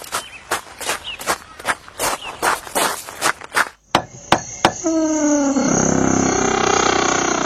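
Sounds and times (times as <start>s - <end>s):
running footsteps: 0.0s - 4.1s
sharp knocks: 3.9s - 4.9s
loud sustained roaring sound: 5.4s - 7.4s.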